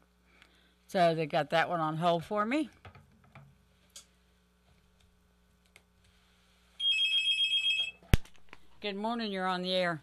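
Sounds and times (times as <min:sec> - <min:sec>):
speech: 0:00.9 - 0:02.8, 0:08.9 - 0:10.0
electronic telephone ring of a listener calling a radio call-in show: 0:06.8 - 0:08.0.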